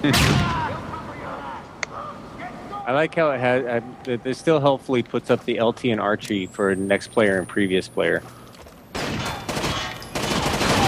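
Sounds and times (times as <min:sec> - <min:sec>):
speech: 0:00.0 - 0:00.6, 0:02.9 - 0:08.4
video game gunfire from a character blind firing: 0:08.9 - 0:10.8.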